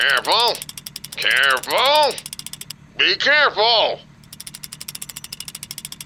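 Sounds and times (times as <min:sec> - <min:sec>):
speech: 0:00.0 - 0:02.4, 0:03.0 - 0:04.1
rickety winch hauling fuel barrels clattering: 0:00.0 - 0:02.8, 0:04.2 - 0:06.0
low mechanical hum of a winch: 0:00.0 - 0:06.0.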